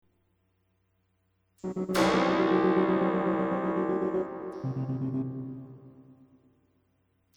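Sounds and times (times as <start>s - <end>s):
dissonant stab: 1.6s - 6.1s.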